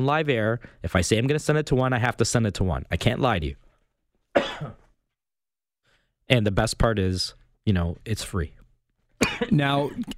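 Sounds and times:
speech: 0.0s - 3.6s, 4.4s - 4.8s, 6.3s - 8.6s, 9.4s - 10.1s
single sharp cough: 4.4s - 4.9s, 9.2s - 10.1s.

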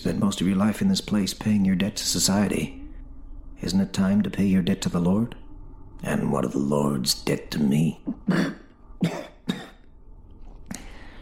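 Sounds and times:
speech: 0.0s - 2.8s, 3.6s - 5.4s, 6.0s - 9.2s
harsh wet bloody coughs: 8.0s - 9.8s.

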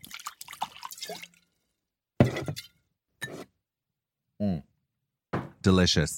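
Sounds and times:
rosé wine pouring into a glass: 0.0s - 1.4s
speech: 5.7s - 6.1s.

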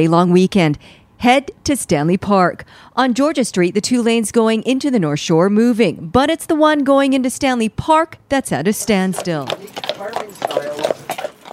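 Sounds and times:
speech: 0.0s - 11.0s
carriage horse hooves clip-clopping on hard pavement: 8.6s - 11.5s.

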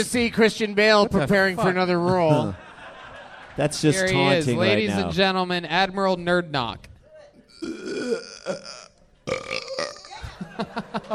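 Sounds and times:
speech: 0.0s - 2.6s, 3.6s - 6.9s, 7.6s - 9.6s, 10.6s - 11.1s
laughter: 1.7s - 5.1s, 10.1s - 11.1s
man belching with a gurgling throaty rumble: 7.5s - 10.2s.

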